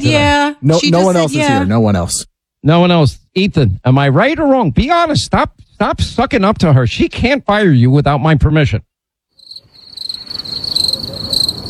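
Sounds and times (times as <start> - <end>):
speech: 0.0 - 8.9
crickets chirping in a high-pitched pulsing trill: 9.3 - 11.6.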